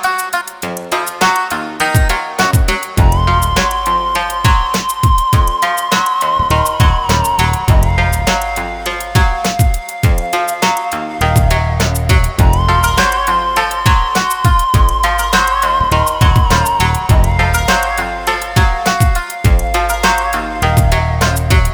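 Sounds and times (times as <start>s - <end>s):
exotica hip hop music in F minor at 102 BPM: 0.1s - 21.7s.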